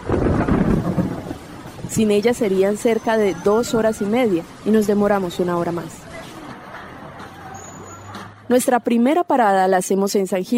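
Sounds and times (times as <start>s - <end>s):
thunder rolling: 0.0s - 6.0s
heavy steady rainfall: 0.0s - 8.1s
speech: 2.0s - 6.0s, 8.5s - 10.5s.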